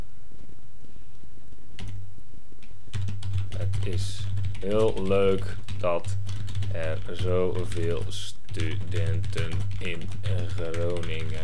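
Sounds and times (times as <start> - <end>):
low hum: 0.0 - 11.4
typing on a computer keyboard: 2.6 - 11.4
speech: 3.8 - 11.4.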